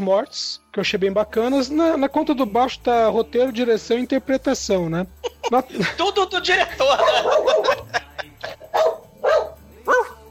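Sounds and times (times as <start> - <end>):
speech: 0.0 - 8.0
laughter: 5.0 - 9.0
dog barking: 6.9 - 8.0, 8.7 - 10.2.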